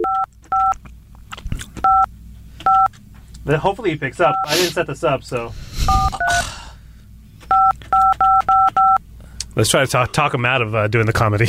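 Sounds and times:
touch-tone phone keypad beeps: 0.0s - 0.8s, 1.8s - 2.9s, 7.5s - 9.0s
speech: 3.4s - 6.0s, 9.6s - 11.4s.

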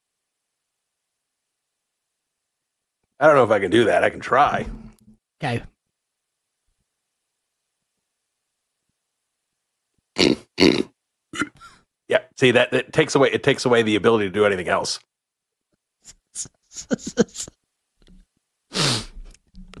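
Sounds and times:
speech: 3.2s - 4.8s, 5.4s - 5.7s, 12.1s - 15.2s, 16.0s - 17.6s
voice imitating a pig's oink: 10.2s - 11.6s
burp into a microphone: 10.2s - 11.8s.

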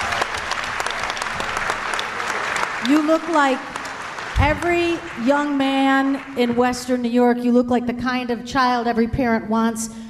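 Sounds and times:
audience applause: 0.0s - 6.5s
speech: 2.8s - 3.7s, 4.4s - 10.0s.

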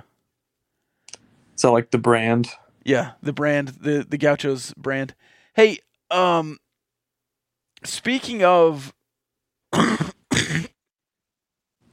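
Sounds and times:
speech: 1.6s - 6.6s, 7.8s - 9.0s
person coughing: 9.7s - 10.8s
person clearing throat: 9.7s - 10.9s.

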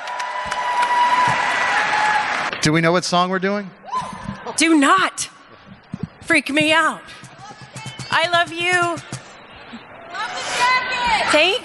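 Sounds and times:
audience applause for a live band's music director: 0.0s - 2.5s
speech: 0.4s - 0.7s, 2.6s - 5.3s, 6.3s - 7.2s, 8.1s - 9.1s, 11.1s - 11.6s.

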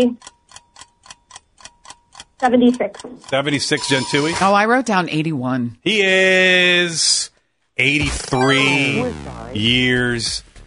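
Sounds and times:
speech: 0.0s - 0.4s, 2.4s - 10.5s
quiz countdown timer ticking: 0.0s - 4.5s, 8.2s - 9.8s.

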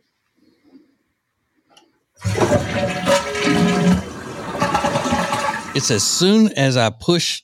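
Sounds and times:
toilet tank flushing with water rushing out: 2.2s - 6.2s
speech: 5.8s - 7.4s.

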